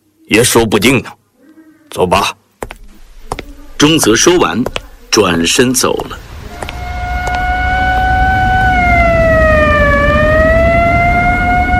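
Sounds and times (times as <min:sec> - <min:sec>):
speech: 0:00.3 - 0:01.2, 0:01.9 - 0:02.4, 0:03.8 - 0:06.3
low rumble of engines and city traffic: 0:06.1 - 0:11.7
police and military vehicle sirens wailing on a city street: 0:06.5 - 0:11.7.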